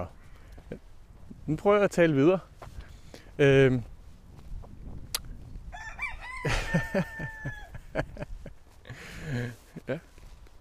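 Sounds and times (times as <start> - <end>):
speech: 0.0 - 0.9, 1.5 - 2.5, 3.4 - 3.9, 6.4 - 8.3, 9.3 - 10.1
rooster crowing: 5.7 - 8.0
laughter: 6.4 - 10.0.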